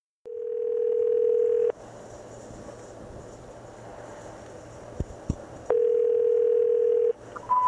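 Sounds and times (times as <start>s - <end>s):
cell phone number being dialed: 0.3s - 1.7s, 5.7s - 7.6s
short high beep: 7.5s - 7.6s.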